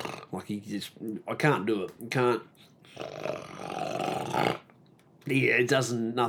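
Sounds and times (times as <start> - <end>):
voice imitating the deep guttural growl of a caged lion: 0.0 - 0.4, 3.0 - 4.7
speech: 0.3 - 3.3, 4.2 - 4.6, 5.2 - 6.2.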